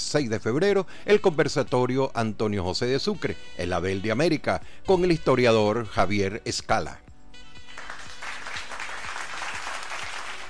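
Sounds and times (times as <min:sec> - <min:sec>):
speech: 0:00.1 - 0:07.0
audience applause after a lecture at a national library: 0:07.8 - 0:10.4.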